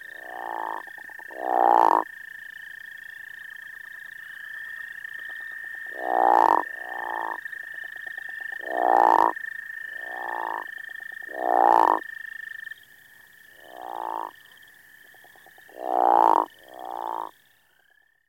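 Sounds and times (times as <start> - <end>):
crawfish frog giving loud rasping snores and softer trills: 0.2 - 2.0, 6.0 - 7.4, 8.6 - 9.3, 10.0 - 10.6, 11.3 - 12.0, 13.6 - 14.3, 15.8 - 17.3.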